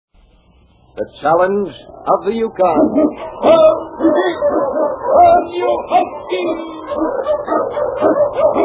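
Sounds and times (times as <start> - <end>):
speech: 1.0 - 8.6
Eskimo sled dogs barking and yipping in storm and snow: 2.4 - 8.6.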